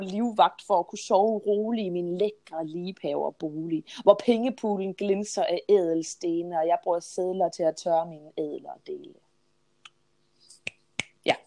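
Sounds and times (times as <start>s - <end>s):
speech: 0.0s - 9.2s
finger snapping: 9.8s - 11.1s.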